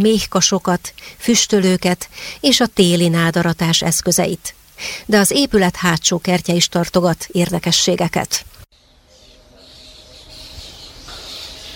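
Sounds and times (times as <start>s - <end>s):
speech: 0.0s - 8.6s
chorus of birds chirping and singing in plane trees outdoors: 8.8s - 11.7s.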